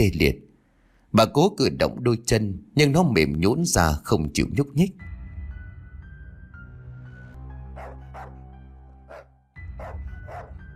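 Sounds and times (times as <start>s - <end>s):
speech: 0.0s - 0.4s, 1.1s - 5.1s
black dog barking in sharp short yaps: 7.7s - 8.4s, 9.1s - 10.6s.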